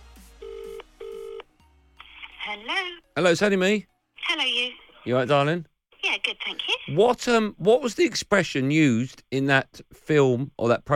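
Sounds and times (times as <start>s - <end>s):
buzzy telephone ringback tones: 0.4s - 1.4s
speech: 2.6s - 10.9s.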